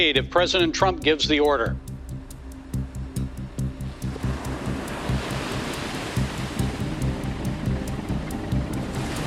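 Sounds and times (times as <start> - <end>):
speech: 0.0 - 1.9
low rhythmic throbbing pulse: 0.0 - 9.2
ocean waves breaking against the hull of a large aircraft carrier in the Caribbean Sea: 3.8 - 9.2.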